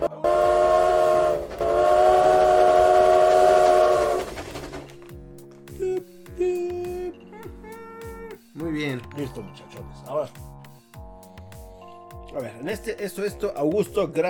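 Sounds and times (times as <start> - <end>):
train whistle blasts: 0.0 - 4.3
train rumbling: 0.0 - 5.1
speech: 12.4 - 14.2.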